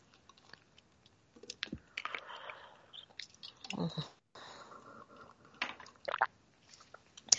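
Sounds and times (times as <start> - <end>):
person sipping and swallowing water: 1.4 - 4.2, 4.8 - 7.3.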